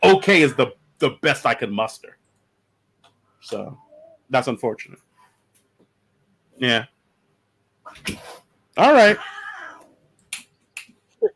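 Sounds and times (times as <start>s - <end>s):
speech: 0.1s - 2.2s, 3.4s - 5.1s, 6.6s - 7.0s, 7.9s - 9.4s
cats hissing through a door: 7.9s - 10.0s
cat meowing through a door: 9.1s - 9.9s.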